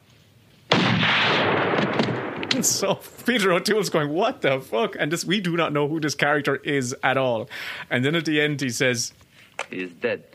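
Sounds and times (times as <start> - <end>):
gunshot in a film scene: 0.7 - 3.0
speech: 2.6 - 10.3.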